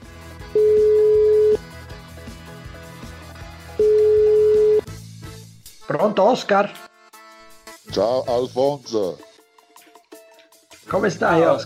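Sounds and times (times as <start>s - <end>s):
phone ringback tone: 0.6s - 1.6s, 3.8s - 4.8s
speech: 6.0s - 6.8s, 7.9s - 9.3s, 10.9s - 11.6s.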